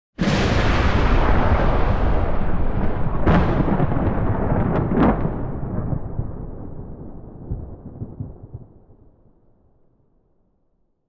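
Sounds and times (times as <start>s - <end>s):
thunder: 0.2s - 9.6s.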